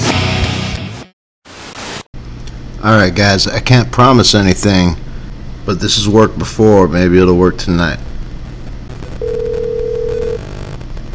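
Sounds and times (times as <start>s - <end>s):
low hum: 2.2s - 11.1s
speech: 2.8s - 5.0s, 5.6s - 8.1s
electronic ringback tone of an outgoing phone call: 9.2s - 10.6s.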